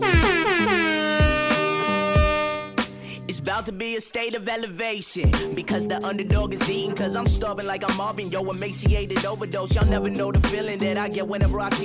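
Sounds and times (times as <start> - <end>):
DJ air horn sound effect blasts: 0.0 - 3.0
speech: 3.5 - 11.8.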